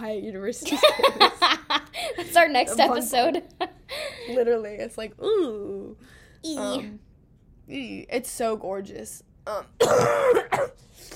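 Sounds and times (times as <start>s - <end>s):
speech: 0.0s - 7.0s, 7.7s - 11.1s
person coughing with a rough throaty edge: 9.5s - 11.1s.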